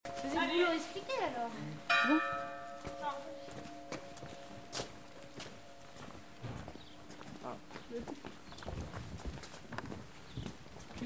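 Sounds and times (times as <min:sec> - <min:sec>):
footsteps: 0:00.0 - 0:11.0
bell ringing: 0:00.1 - 0:01.3, 0:01.9 - 0:06.2.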